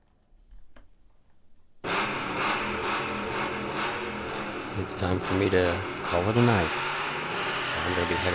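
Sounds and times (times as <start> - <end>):
race car engine revving: 1.8 - 8.3
speech: 4.8 - 6.9, 7.9 - 8.3.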